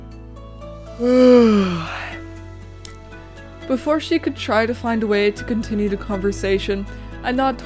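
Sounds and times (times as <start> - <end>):
speech: 1.0 - 2.0, 3.7 - 7.6
heavy drawn-out yawn from one person: 1.0 - 2.2.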